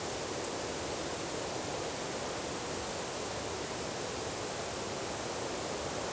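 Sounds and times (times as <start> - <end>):
wind in trees: 0.0 - 6.1.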